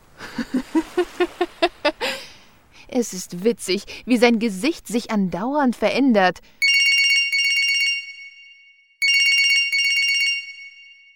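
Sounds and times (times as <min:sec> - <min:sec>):
speech: 0:00.4 - 0:00.7, 0:03.0 - 0:06.6
telephone ringing with rapid trilling: 0:06.6 - 0:08.3, 0:09.0 - 0:10.8.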